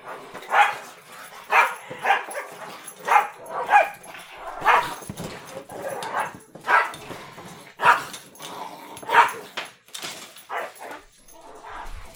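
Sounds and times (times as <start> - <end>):
dog barking with sharp yaps and whiny yips: 0.0 - 5.1, 5.7 - 7.0, 7.8 - 8.1, 9.0 - 9.5, 10.5 - 12.1.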